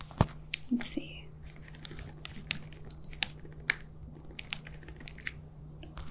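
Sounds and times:
steady low hum: 0.0s - 6.0s
typing a web search on a computer keyboard: 1.6s - 5.4s.

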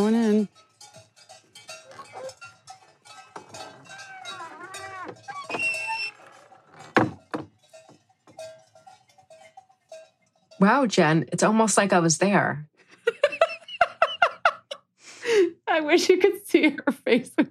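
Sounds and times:
cowbells clanking on grazing cows in an alpine meadow in Germany: 0.0s - 11.8s
grazing cow sounds: 1.6s - 9.2s
speech: 10.6s - 12.7s, 15.9s - 17.4s
laughter: 12.9s - 14.8s.

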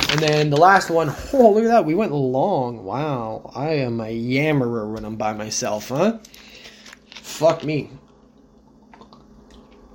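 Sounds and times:
speech: 0.1s - 6.5s, 7.3s - 8.0s
person sipping and swallowing water: 8.0s - 9.9s.

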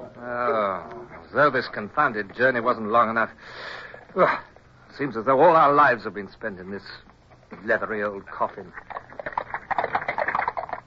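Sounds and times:
speech: 1.3s - 8.9s
hooves of three horses clip-clopping pulling a carriage: 8.6s - 10.8s.

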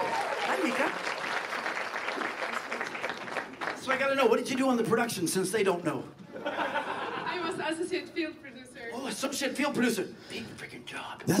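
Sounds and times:
audience applause: 0.0s - 4.2s
speech: 4.0s - 6.2s, 7.7s - 11.3s
laughter: 6.2s - 7.8s.

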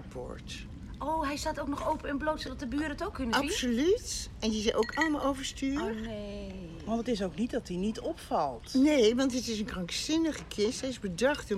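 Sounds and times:
people chatting: 0.0s - 11.5s
speech: 0.1s - 11.5s
ice clinking in a whisky glass: 4.6s - 5.9s.

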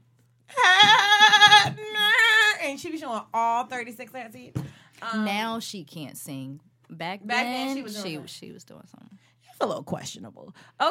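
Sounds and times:
woman imitating a billy goat's bleat: 0.5s - 2.6s
speech: 2.7s - 10.8s.

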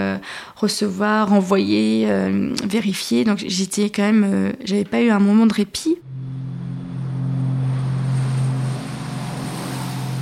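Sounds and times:
speech: 0.2s - 6.2s
airplane taking off with propeller-like engine droning: 6.0s - 10.1s
rushing air: 6.0s - 10.1s.

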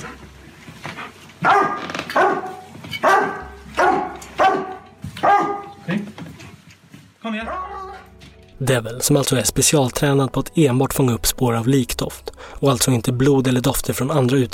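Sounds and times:
cadaver dog barking loudly at a bed in a bedroom: 1.4s - 5.8s
speech: 7.3s - 7.7s, 8.6s - 14.5s.

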